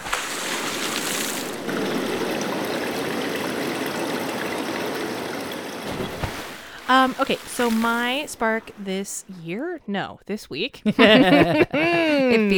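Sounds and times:
bubbling and trickling water: 0.0 - 9.0
speech: 6.9 - 12.5
laughter: 10.8 - 12.5.

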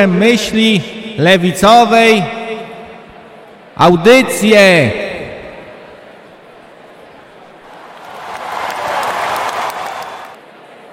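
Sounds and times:
speech: 0.0 - 2.4, 3.8 - 5.0
applause from a small group: 7.6 - 10.4.

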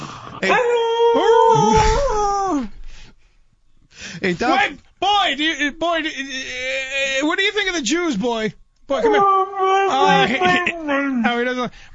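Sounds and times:
speech: 0.4 - 0.8, 4.2 - 11.9
person imitating a dog howling, whining and yelping: 0.4 - 2.6, 9.0 - 11.2.

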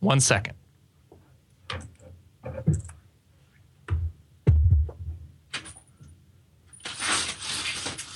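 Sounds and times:
speech: 0.0 - 0.6
window blinds closing on the eighth floor in Midtown Manhattan: 6.8 - 8.1.

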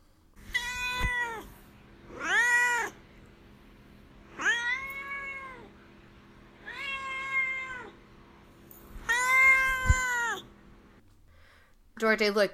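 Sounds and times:
domestic cat meowing: 0.4 - 1.5, 2.2 - 3.0, 4.4 - 5.7, 6.6 - 8.0, 9.0 - 10.5
speech: 12.0 - 12.5.

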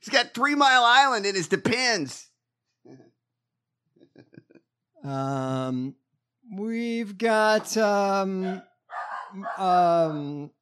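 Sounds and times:
speech: 0.0 - 2.3, 5.0 - 10.6
voice imitating a dog yelping and howling: 7.6 - 10.4.

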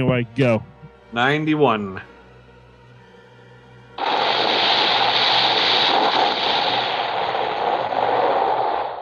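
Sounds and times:
speech: 0.0 - 2.1
movie-style battle explosions: 4.0 - 9.0
rapid gunfire-like blasts: 4.0 - 9.0.

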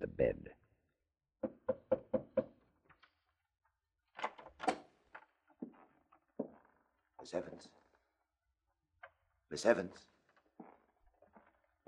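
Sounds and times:
speech: 0.0 - 0.6, 7.3 - 7.8, 9.6 - 10.1
knocking on a door: 1.4 - 2.6.

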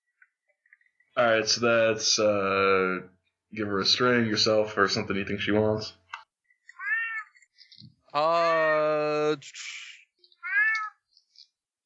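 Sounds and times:
speech: 1.2 - 6.0, 8.1 - 9.7
cat meowing: 6.7 - 7.4, 10.4 - 11.1.

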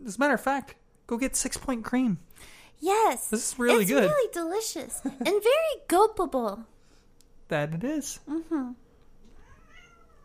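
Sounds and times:
speech: 0.0 - 6.7, 7.5 - 8.8
cat meowing: 9.4 - 10.2.

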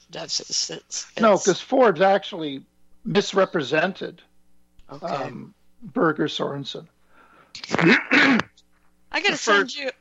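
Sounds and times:
speech: 0.1 - 4.3, 4.9 - 7.0, 7.6 - 8.5, 9.1 - 9.9
person coughing: 7.6 - 8.5
person clearing throat: 7.6 - 8.6.

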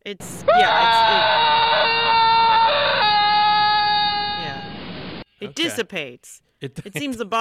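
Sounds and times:
speech: 0.0 - 1.1, 5.5 - 7.3
long fearful scream: 0.4 - 4.8.

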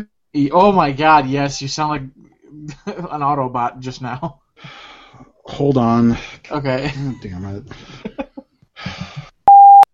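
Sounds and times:
speech: 0.0 - 8.2
mobile phone beeping on a desk next to a microphone: 9.5 - 9.9.

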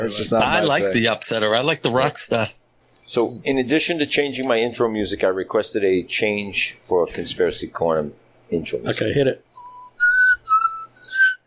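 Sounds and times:
speech: 0.0 - 9.6
person whistling a short melodic phrase: 9.6 - 11.4.

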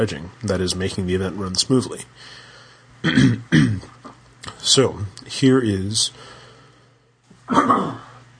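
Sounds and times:
speech: 0.0 - 2.4, 3.0 - 4.0, 4.6 - 6.3, 7.5 - 8.0
person clearing throat: 3.0 - 4.2, 7.5 - 8.2
person coughing: 3.0 - 4.2, 7.5 - 8.2.

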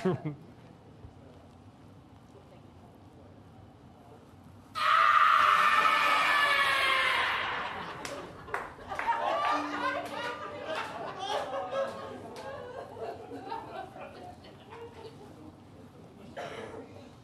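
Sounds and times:
laughter: 0.0 - 0.5, 6.8 - 16.4
loud shrill scream: 4.8 - 8.0.

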